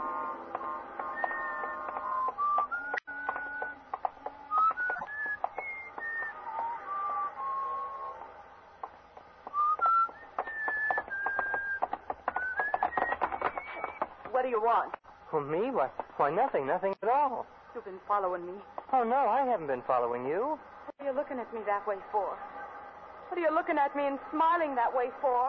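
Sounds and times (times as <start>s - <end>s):
person whistling a wandering melody while walking along a street: 1.2s - 3.8s, 4.5s - 8.2s, 9.5s - 14.0s
sharp clicking footsteps on pavement: 1.2s - 15.0s
speech: 14.5s - 22.5s, 23.4s - 25.4s.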